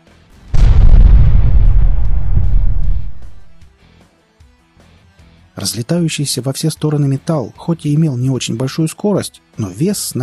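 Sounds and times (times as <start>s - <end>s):
single powerful explosion: 0.4s - 3.6s
deep heavy rumble: 0.5s - 3.6s
speech: 5.6s - 10.2s.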